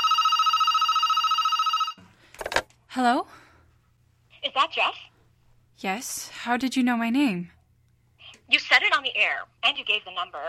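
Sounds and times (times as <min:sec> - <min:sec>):
landline telephone trilling ring: 0:00.0 - 0:02.0
speech: 0:03.0 - 0:03.4, 0:04.5 - 0:05.1, 0:05.8 - 0:07.6, 0:08.5 - 0:10.4.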